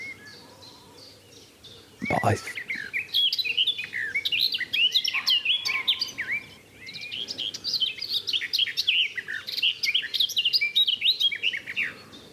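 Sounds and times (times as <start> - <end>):
garden warbler or blackcap singing: 1.0 - 12.3
speech: 2.0 - 2.6.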